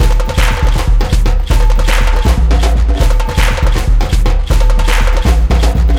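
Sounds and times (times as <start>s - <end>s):
super mega big win jingle loop: 0.0s - 5.9s.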